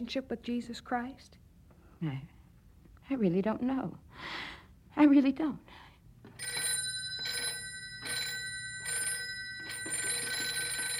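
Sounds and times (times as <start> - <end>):
speech: 0.0 - 1.4, 2.0 - 2.4, 3.1 - 5.8
telephone bell ringing: 6.3 - 10.9.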